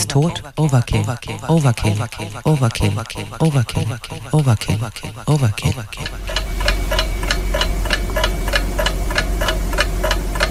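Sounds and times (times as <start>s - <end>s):
low hum: 0.0s - 10.5s
speech: 0.1s - 7.0s
clock ticking: 5.6s - 10.5s.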